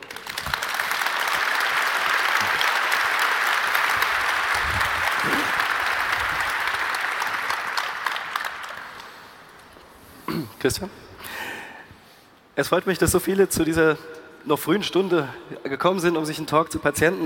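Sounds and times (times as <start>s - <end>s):
large audience applauding: 0.0s - 9.6s
speech: 10.6s - 11.0s, 12.6s - 17.2s.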